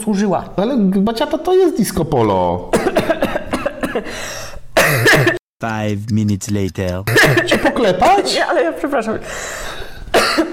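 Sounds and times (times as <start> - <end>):
speech: 0.0 - 2.8, 4.0 - 9.8
woman coughing after choking: 2.7 - 4.1, 4.8 - 5.4, 7.1 - 8.2, 10.1 - 10.5.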